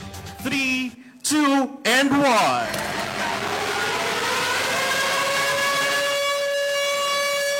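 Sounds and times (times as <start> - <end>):
speech: 0.4 - 3.4
earthquake drill siren wailing: 2.6 - 7.5.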